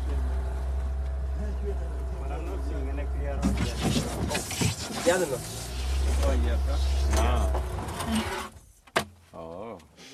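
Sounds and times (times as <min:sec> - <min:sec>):
boat motor droning on a river: 0:00.0 - 0:07.8
people talking on a river: 0:01.4 - 0:05.5, 0:06.1 - 0:07.6.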